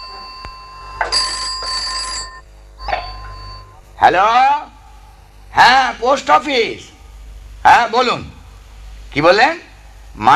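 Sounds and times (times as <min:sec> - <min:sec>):
telephone bell ringing: 0:00.0 - 0:03.8
speech: 0:04.0 - 0:04.7, 0:05.6 - 0:06.9, 0:07.6 - 0:08.3, 0:09.1 - 0:10.3.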